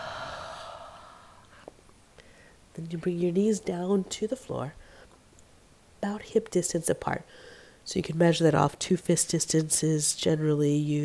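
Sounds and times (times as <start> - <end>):
long breath exhaled through the mouth during yoga: 0.0 - 1.6
speech: 2.8 - 4.8, 6.2 - 11.0.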